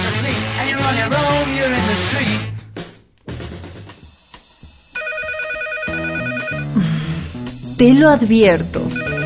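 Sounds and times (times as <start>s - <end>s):
speech: 0.2s - 2.5s, 7.8s - 9.0s
phone ringtone with bright electronic melody: 5.0s - 6.8s, 8.9s - 9.2s.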